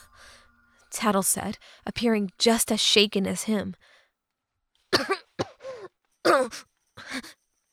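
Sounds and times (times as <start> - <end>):
speech: 1.1 - 3.9
person coughing: 4.9 - 6.6.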